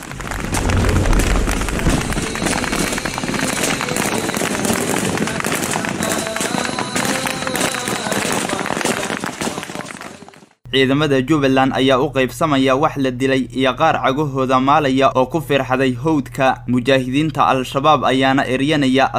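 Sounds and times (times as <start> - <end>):
dense gunfire of militants firing on soldiers in a village: 0.0 - 10.3
speech: 10.8 - 19.1.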